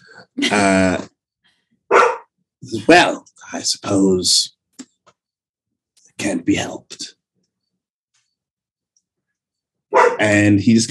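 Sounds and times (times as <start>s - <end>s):
speech: 0.4s - 1.1s, 2.9s - 4.6s, 6.4s - 6.9s, 10.2s - 10.8s
dog barking: 1.9s - 2.3s, 9.9s - 10.2s.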